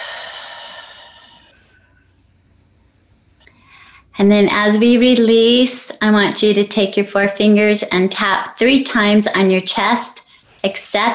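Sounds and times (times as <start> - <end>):
deep breath blown out during a guided breathing exercise: 0.0 - 2.0
speech: 4.2 - 11.1.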